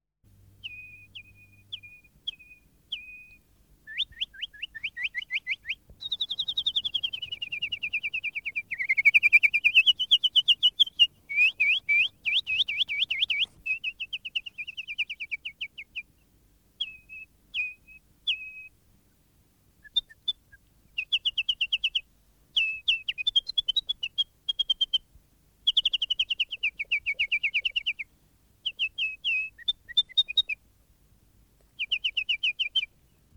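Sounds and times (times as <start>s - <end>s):
nightingale: 0.3s - 18.8s, 19.8s - 30.7s, 31.6s - 33.3s.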